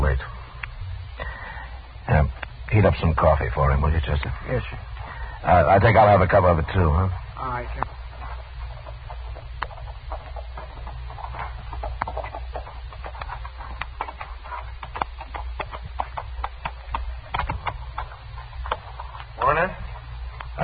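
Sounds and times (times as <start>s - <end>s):
horse hooves clopping: 0.0s - 20.6s
low rumble: 0.0s - 20.6s
speech: 2.2s - 8.0s.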